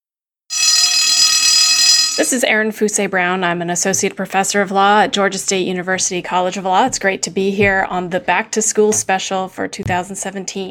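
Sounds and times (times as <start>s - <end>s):
old school bell ringing: 0.5s - 2.4s
speech: 2.2s - 10.6s.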